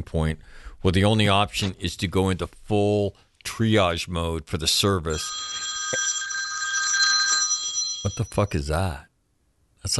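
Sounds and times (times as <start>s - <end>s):
speech: 0.0s - 5.6s, 8.0s - 9.1s
old-fashioned telephone bell ringing: 5.1s - 8.6s.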